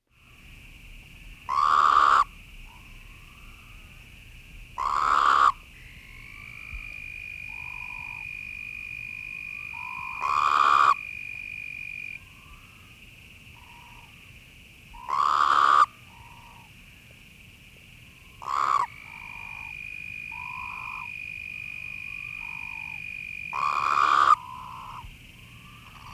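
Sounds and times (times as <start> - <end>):
Incilius alvarius calling: 1.5 - 4.0, 4.8 - 8.4, 9.5 - 11.3, 15.0 - 16.7, 18.4 - 26.1.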